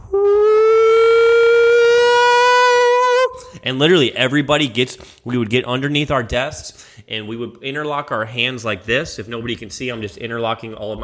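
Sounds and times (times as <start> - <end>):
outdoor tornado warning siren wailing: 0.0 - 3.4
speech: 3.7 - 11.0.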